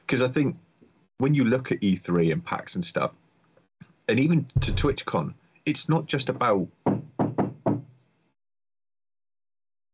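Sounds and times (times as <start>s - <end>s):
speech: 0.1s - 0.6s, 1.2s - 3.2s, 3.8s - 6.8s
knocking on a door: 4.6s - 5.0s, 6.9s - 7.9s.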